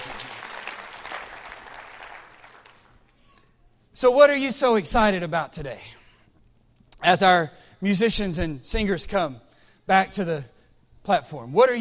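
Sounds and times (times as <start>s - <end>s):
church audience clapping hands: 0.0s - 3.2s
speech: 4.0s - 6.0s, 7.0s - 11.7s.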